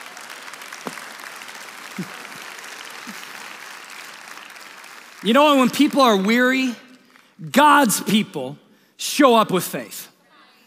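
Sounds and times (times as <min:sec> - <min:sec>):
audience applause: 0:00.0 - 0:07.4
speech: 0:02.0 - 0:02.2, 0:05.2 - 0:06.8, 0:07.4 - 0:10.1.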